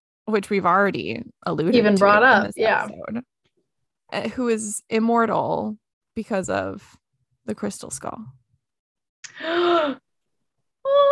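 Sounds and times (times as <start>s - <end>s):
speech: 0.3s - 3.3s, 4.1s - 8.4s, 9.4s - 10.0s
person letting out a dramatic gasp: 9.3s - 10.0s.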